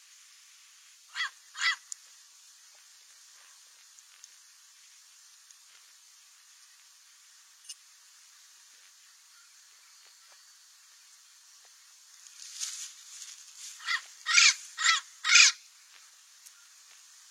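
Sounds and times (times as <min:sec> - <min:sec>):
Cape parrot squawking: 0:01.1 - 0:01.8, 0:13.8 - 0:15.6.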